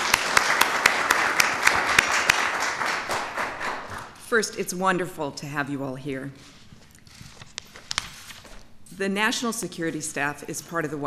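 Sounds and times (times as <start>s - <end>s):
crowd applauding: 0.0s - 4.1s
sharp individual claps: 0.0s - 4.2s
speech: 4.3s - 6.6s, 9.0s - 11.0s.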